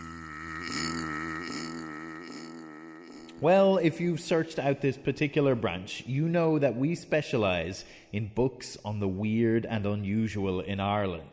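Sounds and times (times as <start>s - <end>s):
long deep echoing burp: 0.0s - 4.0s
speech: 3.4s - 11.3s.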